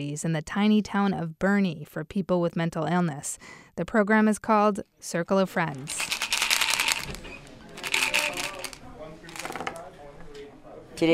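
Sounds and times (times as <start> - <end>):
speech: 0.0 - 6.1, 7.1 - 7.3, 11.0 - 11.1
playing cards being shuffled at a game table: 5.8 - 9.8
soft murmur of voices: 6.8 - 11.1.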